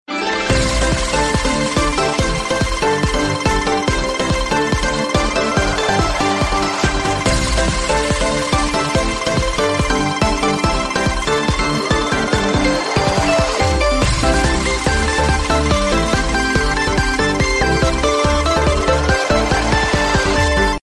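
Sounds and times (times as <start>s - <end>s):
free spin charge sound: 0.5s - 20.7s.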